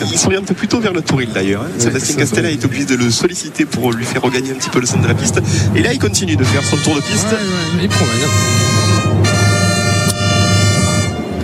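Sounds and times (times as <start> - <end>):
speech: 0.0 - 8.8
noise: 0.0 - 11.4
bugle call at a bullfight: 6.4 - 11.4.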